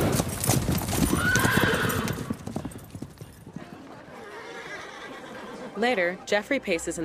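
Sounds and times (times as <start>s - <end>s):
horse galloping away with hooves clopping: 0.0s - 5.9s
horse whinny: 1.0s - 2.8s, 3.6s - 5.8s
speech: 5.8s - 7.0s.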